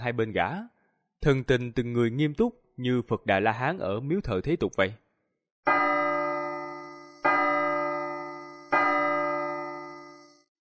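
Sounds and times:
speech: 0:00.0 - 0:05.0
bell struck at a solemn gathering: 0:05.7 - 0:10.4.

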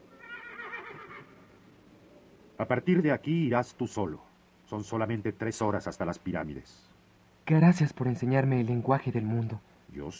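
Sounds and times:
horse neighing faintly as its rider dismounts at a monastery at dusk: 0:00.1 - 0:01.5
speech: 0:02.6 - 0:06.9, 0:07.5 - 0:10.1.

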